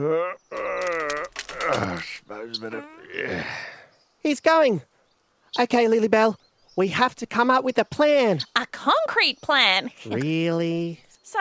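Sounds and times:
speech: 0:00.0 - 0:01.0, 0:01.7 - 0:04.9, 0:05.5 - 0:11.4
man groaning deeply as he gets up: 0:00.0 - 0:03.8.

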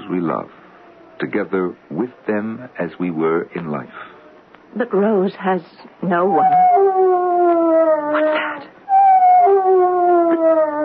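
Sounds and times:
speech: 0:00.1 - 0:00.6, 0:01.2 - 0:04.1, 0:04.7 - 0:07.0
dog howling: 0:06.2 - 0:10.8.

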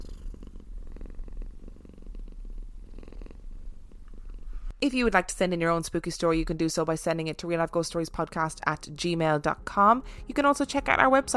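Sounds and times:
cat purring: 0:00.0 - 0:04.8
speech: 0:04.8 - 0:11.3.

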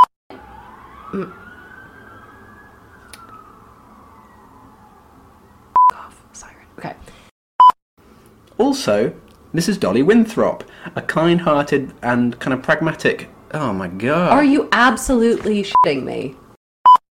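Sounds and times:
emergency siren wailing: 0:00.3 - 0:05.8
speech: 0:01.1 - 0:01.4, 0:08.7 - 0:16.4.

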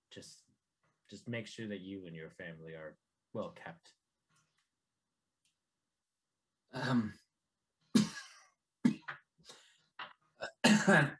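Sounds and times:
speech: 0:00.2 - 0:00.4, 0:01.1 - 0:04.0, 0:06.7 - 0:07.2, 0:10.7 - 0:11.1
man clearing throat: 0:06.7 - 0:07.2, 0:08.0 - 0:09.1, 0:10.4 - 0:11.1
man coughing: 0:08.0 - 0:09.1, 0:10.4 - 0:11.1.

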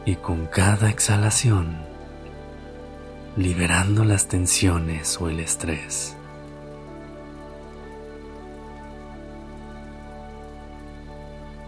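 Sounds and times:
speech: 0:00.0 - 0:01.9, 0:03.4 - 0:06.2
steady rain pattering on a surface: 0:00.0 - 0:11.6.

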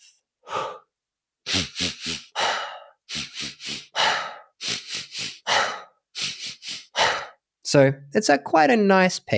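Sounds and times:
quick sharp sniffs in through the nose: 0:01.5 - 0:02.5, 0:03.1 - 0:07.4
longer relaxed breath out through the mouth: 0:01.5 - 0:07.4
speech: 0:07.7 - 0:09.3.

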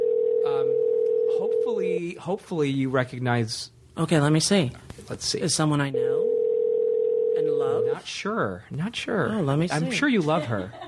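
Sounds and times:
telephone dial tone: 0:00.0 - 0:01.4, 0:06.2 - 0:07.5
speech: 0:01.4 - 0:06.2, 0:07.4 - 0:10.8
laughter: 0:09.9 - 0:10.8.

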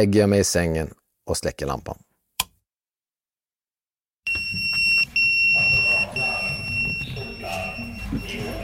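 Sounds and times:
speech: 0:00.0 - 0:02.1
fire station alarm with high-pitched electronic tone echoing in a room with beds: 0:04.3 - 0:08.6.

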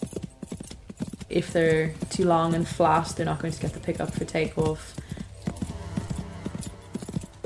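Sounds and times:
horse hooves cantering: 0:00.0 - 0:07.4
speech: 0:01.3 - 0:05.0
low steady rumble: 0:02.1 - 0:07.4.

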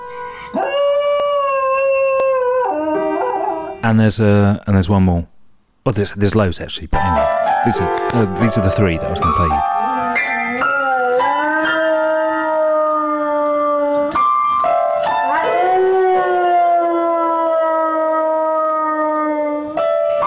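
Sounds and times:
dog howling in long wavering notes: 0:00.5 - 0:03.8, 0:09.7 - 0:14.3, 0:15.0 - 0:20.0
speech: 0:03.8 - 0:09.7
piano keys struck by a dog: 0:07.0 - 0:10.5.

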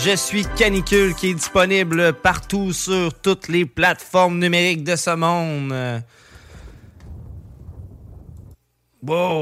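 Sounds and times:
speech: 0:00.0 - 0:06.2, 0:09.0 - 0:09.3
deep rolling rumble of thunder: 0:06.7 - 0:08.6.

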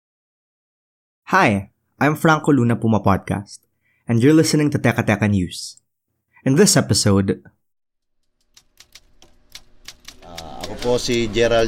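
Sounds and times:
speech: 0:01.3 - 0:05.8, 0:06.4 - 0:07.5, 0:10.8 - 0:11.6
manual typewriter keys clacking at a typewriter shop in Quiapo: 0:08.2 - 0:11.4.

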